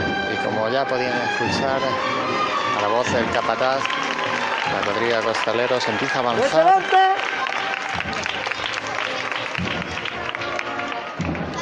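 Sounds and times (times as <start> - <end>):
speech: 0.6 - 4.1, 4.7 - 7.4
large crowd applauding a procession float of Christ in the Plaza de San Bartolomé: 2.7 - 11.6.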